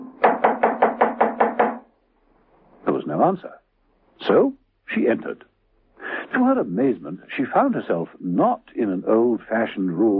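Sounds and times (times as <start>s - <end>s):
knuckles knocking on a front door: 0.2s - 1.9s
speech: 3.0s - 3.6s, 4.2s - 5.5s, 6.3s - 10.1s.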